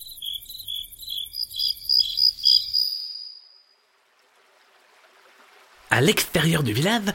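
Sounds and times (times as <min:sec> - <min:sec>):
high-pitched cricket chirping: 0:00.0 - 0:03.8
speech: 0:05.9 - 0:07.1.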